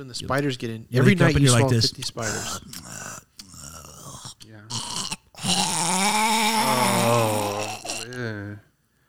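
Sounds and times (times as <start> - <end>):
speech: 0.0 - 3.1
person loudly imitating snoring: 2.2 - 8.2.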